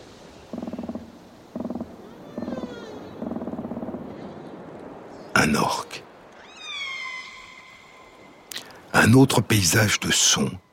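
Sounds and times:
steady hiss: 0:00.0 - 0:10.7
gull calling in an ocean soundscape: 0:00.4 - 0:04.7, 0:06.2 - 0:08.8
speech: 0:09.1 - 0:10.7.

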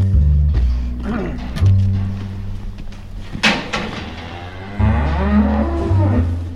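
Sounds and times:
shuffling: 0:00.0 - 0:06.5
clanking: 0:00.9 - 0:06.5
dairy cows mooing in a barn: 0:03.4 - 0:06.5.

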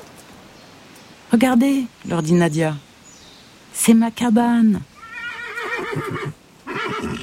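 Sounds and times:
speech: 0:01.3 - 0:02.9, 0:03.8 - 0:04.9, 0:06.0 - 0:06.4
horse neighing: 0:05.0 - 0:07.2.

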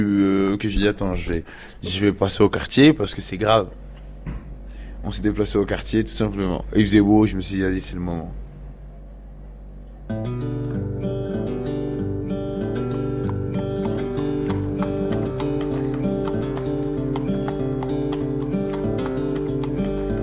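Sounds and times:
speech: 0:00.0 - 0:03.9, 0:05.0 - 0:08.4
sustained droning musical tone: 0:10.3 - 0:20.2
horse hooves clip-clopping as a horse is ridden through a neighbourhood: 0:13.2 - 0:20.2.

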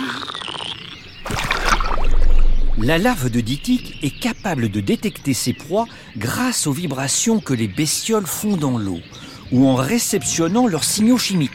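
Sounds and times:
small baby frog croaking: 0:00.0 - 0:06.5
splashing and paddling in water: 0:01.1 - 0:06.0
speech: 0:02.8 - 0:11.5.

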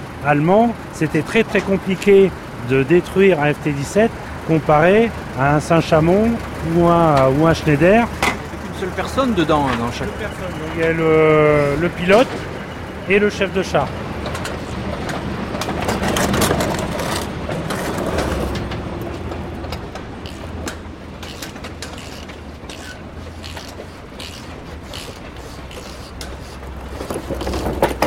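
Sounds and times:
low mechanical rumble: 0:00.0 - 0:28.0
speech: 0:00.2 - 0:08.2, 0:08.8 - 0:12.4, 0:13.1 - 0:14.0
metal clanks and knocks: 0:07.1 - 0:10.1, 0:14.2 - 0:25.4, 0:26.1 - 0:28.0
metal engine cover plates being refitted, scraping and rattling: 0:14.2 - 0:28.0.

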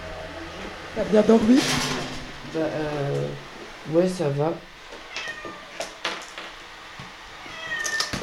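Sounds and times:
speech: 0:01.0 - 0:04.7
cat meowing: 0:05.1 - 0:05.9, 0:07.4 - 0:08.2.

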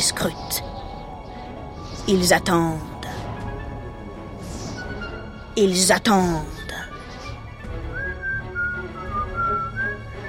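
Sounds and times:
speech: 0:00.0 - 0:00.7, 0:02.1 - 0:02.9, 0:05.6 - 0:06.6
person whistling a tune: 0:07.8 - 0:10.2.

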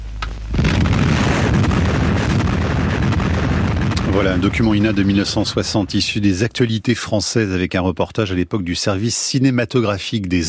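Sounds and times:
brief low rumble: 0:00.0 - 0:06.8
sustained roaring broadband blast with crackling texture: 0:00.0 - 0:06.8
archival recording of atomic bomb explosion: 0:00.5 - 0:06.6
speech: 0:04.2 - 0:10.4.

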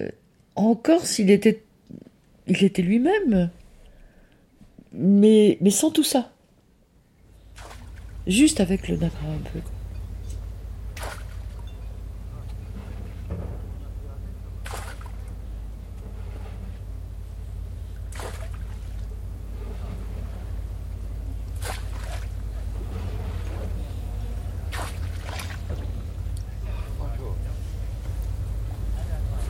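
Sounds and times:
speech: 0:00.0 - 0:01.6, 0:02.5 - 0:03.6, 0:04.9 - 0:06.4, 0:07.6 - 0:09.8
harbour water: 0:00.0 - 0:29.4
low rumble of boat engines in a harbour: 0:00.0 - 0:29.4
sharp splashes or knocks in a harbour: 0:07.5 - 0:08.2, 0:10.9 - 0:11.8, 0:12.7 - 0:15.5, 0:18.0 - 0:20.7, 0:21.5 - 0:26.3.

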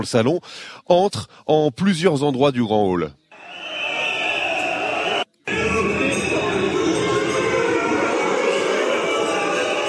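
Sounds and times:
speech: 0:00.0 - 0:03.2
crowd of protesting farmers shouting inside a large exhibition hall: 0:03.4 - 0:09.8.

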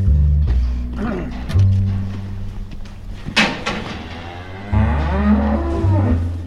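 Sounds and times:
person speaking: 0:00.9 - 0:01.6
metallic clanks: 0:00.9 - 0:06.4
dairy cows mooing in an enclosed barn: 0:03.4 - 0:06.4.

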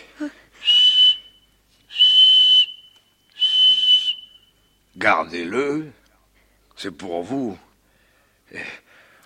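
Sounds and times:
speech: 0:00.2 - 0:00.4, 0:05.0 - 0:06.0, 0:06.8 - 0:07.7, 0:08.5 - 0:08.8
shrill whistle blasts: 0:00.6 - 0:04.8.

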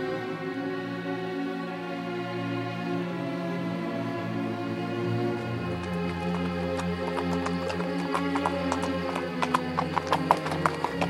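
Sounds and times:
sustained humming musical backdrop: 0:00.0 - 0:11.0
horse hooves clopping at a walking pace: 0:05.0 - 0:11.0.

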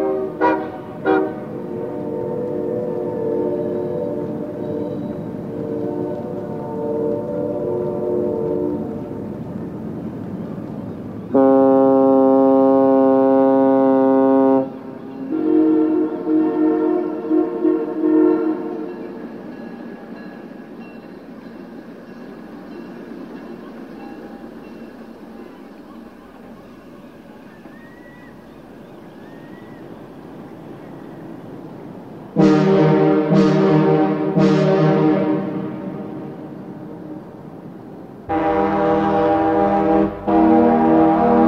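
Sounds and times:
long harmonic train horn in Vancouver: 0:00.0 - 0:09.4, 0:11.3 - 0:19.5, 0:32.3 - 0:37.4, 0:38.3 - 0:41.4.

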